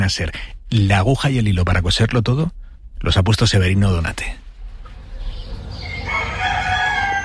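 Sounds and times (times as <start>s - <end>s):
speech: 0.0s - 4.4s
low rumbling noise: 0.0s - 7.2s
rooster crowing at dawn behind farmyard walls in Cantabria Spain: 5.4s - 7.2s.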